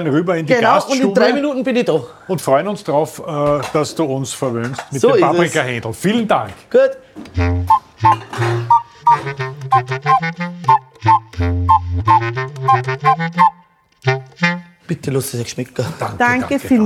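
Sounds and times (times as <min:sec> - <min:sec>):
speech: 0:00.0 - 0:16.8
plates clinking as paprika chicken is served: 0:08.0 - 0:09.3.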